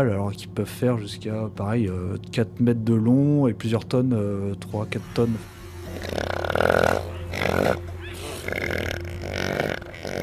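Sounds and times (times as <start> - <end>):
speech: 0.0 - 6.8
steady low hum: 0.0 - 10.2
elephant seals belching: 5.5 - 10.2.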